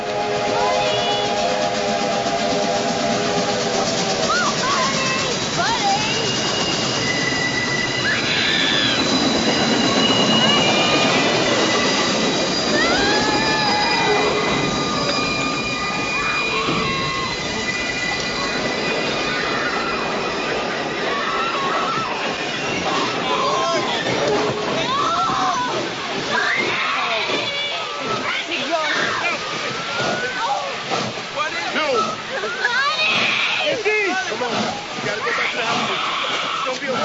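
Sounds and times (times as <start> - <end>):
train whistle: 0.0 - 18.8, 22.5 - 25.6
train rumbling on rails in a film scene: 0.0 - 37.0
train wheels squealing: 0.0 - 37.0
voices: 0.0 - 37.0.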